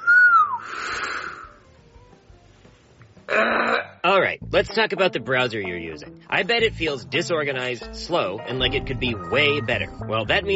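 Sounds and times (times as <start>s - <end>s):
person whistling with lips: 0.0s - 1.0s, 8.9s - 9.9s
speech: 4.5s - 10.5s.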